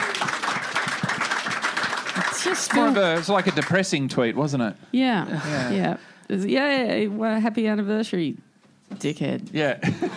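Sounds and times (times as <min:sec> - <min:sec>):
crowd applause: 0:00.0 - 0:04.1
speech: 0:02.4 - 0:10.1.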